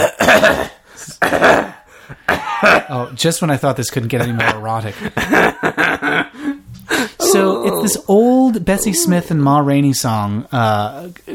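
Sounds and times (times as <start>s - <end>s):
baby giving a harsh raspy cough: 0.0s - 2.9s
speech: 2.6s - 6.3s, 7.3s - 11.3s
laughter: 4.1s - 7.2s
quiet breathy noises: 6.4s - 9.4s.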